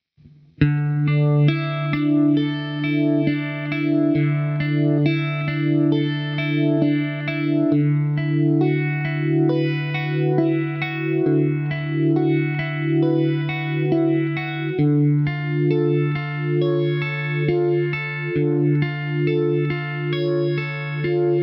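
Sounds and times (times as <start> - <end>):
Uni-Vibe effect pedal sound: 0.6 - 21.4.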